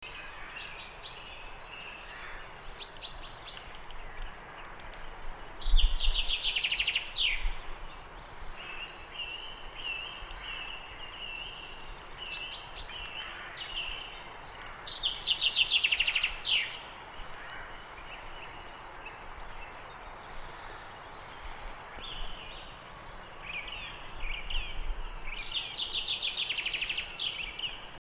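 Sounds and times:
background noise: 0.0s - 27.9s
common chaffinch Fringilla coelebs song: 0.0s - 27.9s
soft common chaffinch calls: 0.0s - 27.9s.

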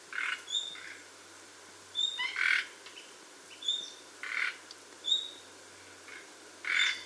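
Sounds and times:
soft steady hiss: 0.0s - 7.0s
common nightingale Luscinia megarhynchos giving sharp high whistles and grating rasps: 0.5s - 0.8s, 2.0s - 2.5s, 3.5s - 4.0s, 5.0s - 5.4s, 6.7s - 7.0s.

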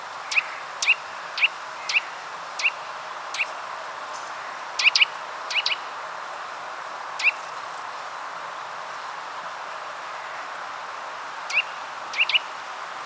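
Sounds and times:
Eurasian nuthatch Sitta europaea giving crisp high notes: 0.3s - 5.8s, 7.2s - 7.4s, 11.5s - 12.6s.

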